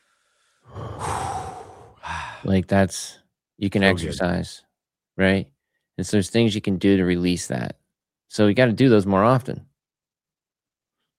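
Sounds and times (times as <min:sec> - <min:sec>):
deep slow breath taken to relieve stress: 0:00.0 - 0:02.6
speech: 0:02.4 - 0:09.7.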